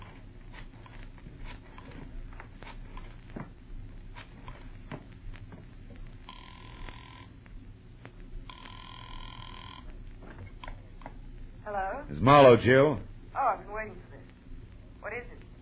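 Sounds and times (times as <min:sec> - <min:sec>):
telephone ringing in electronic bursts: 0:06.2 - 0:07.4, 0:08.5 - 0:09.9
speech: 0:11.7 - 0:13.1.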